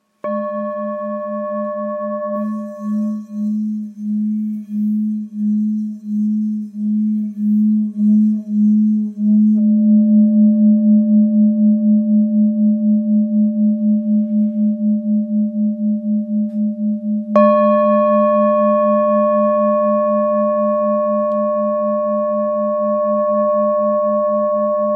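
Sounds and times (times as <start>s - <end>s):
old singing bowl tone in G sharp: 0.0s - 24.9s.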